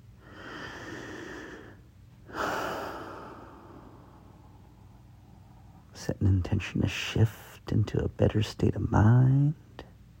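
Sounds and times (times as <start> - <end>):
long deep breath: 0.2 - 5.8
speech: 6.0 - 9.7.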